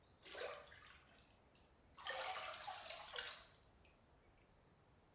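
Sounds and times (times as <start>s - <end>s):
water dripping and trickling: 0.2s - 4.0s.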